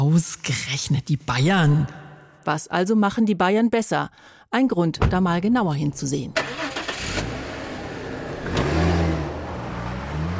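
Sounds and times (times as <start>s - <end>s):
speech: 0.0s - 7.2s
car engine humming on a road trip into Lower Franconia, Bavaria: 6.4s - 10.3s.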